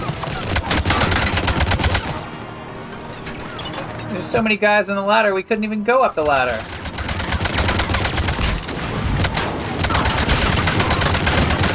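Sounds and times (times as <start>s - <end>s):
video game gunfire from cover-piercing bullets: 0.0s - 2.3s, 6.2s - 11.7s
speech: 4.3s - 6.8s.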